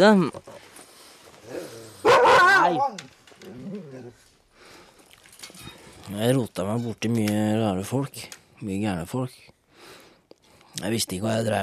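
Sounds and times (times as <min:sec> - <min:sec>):
speech: 0:00.0 - 0:00.4, 0:06.1 - 0:09.5, 0:10.8 - 0:11.6
dog barking: 0:02.0 - 0:03.0.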